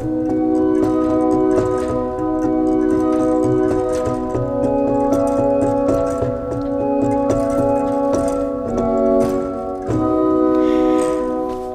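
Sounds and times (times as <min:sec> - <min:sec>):
pipe organ tone with octave-higher coupler stop added: 0:00.0 - 0:11.7.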